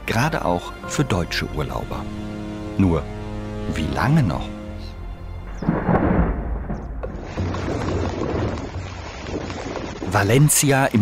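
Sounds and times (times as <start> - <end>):
speech: 0.2 - 4.6, 10.1 - 11.0
deep thunder rumbling: 5.5 - 10.6
torrential rain in a thunderstorm: 7.0 - 11.0.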